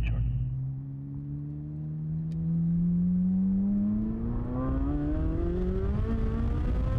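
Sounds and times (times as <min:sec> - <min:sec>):
race cars accelerating down a runway: 0:00.2 - 0:06.9.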